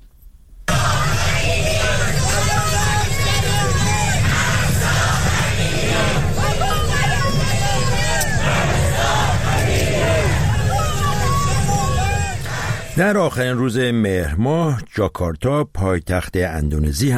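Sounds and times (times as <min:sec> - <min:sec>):
large crowd of protesters chanting and shouting in unison: 0:00.7 - 0:13.4
speech: 0:13.0 - 0:17.1.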